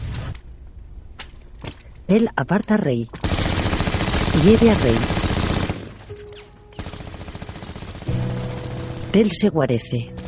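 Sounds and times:
speech: 0:02.1 - 0:03.3, 0:04.3 - 0:05.2, 0:09.2 - 0:10.1
submachine gun fire in a shootout: 0:03.2 - 0:06.1, 0:06.8 - 0:09.2.

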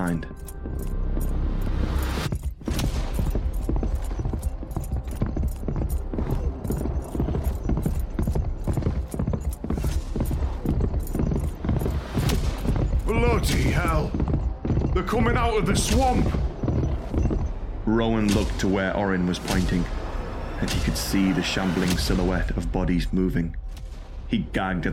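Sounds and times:
speech: 0:00.0 - 0:00.9, 0:15.0 - 0:16.4, 0:17.9 - 0:20.0, 0:20.6 - 0:23.6, 0:24.3 - 0:24.9
horse galloping: 0:00.5 - 0:17.6.

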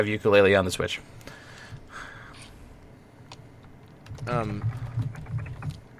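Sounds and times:
speech: 0:00.0 - 0:01.4, 0:04.2 - 0:04.8
rapid computer keyboard typing: 0:03.8 - 0:05.9.

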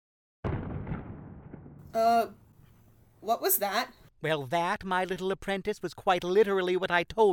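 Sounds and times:
loud explosive boom: 0:00.4 - 0:03.2
speech: 0:02.0 - 0:02.4, 0:03.2 - 0:07.3.

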